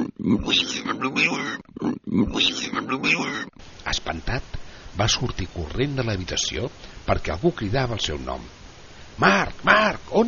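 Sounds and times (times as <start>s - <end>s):
human voice imitating pig snorting oinks and grunts: 0.0s - 3.6s, 9.2s - 10.0s
speech: 0.2s - 8.6s, 9.2s - 10.2s.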